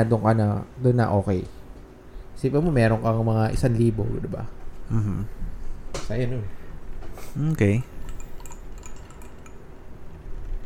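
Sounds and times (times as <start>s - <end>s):
speech: 0.0s - 1.6s, 2.4s - 5.5s, 6.1s - 6.6s, 7.4s - 7.9s
glasses clinking in a toast: 7.5s - 10.2s.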